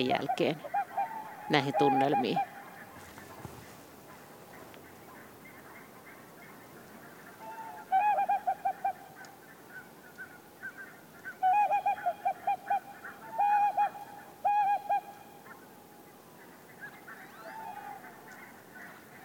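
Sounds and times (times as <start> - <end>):
speech: 0.0 - 0.7, 1.5 - 2.5
tawny owl hooting: 0.0 - 2.6, 7.4 - 9.2, 10.2 - 15.5.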